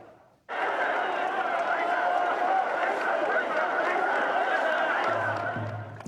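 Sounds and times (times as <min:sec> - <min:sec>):
float-bearing teams chanting: 0:00.5 - 0:06.0.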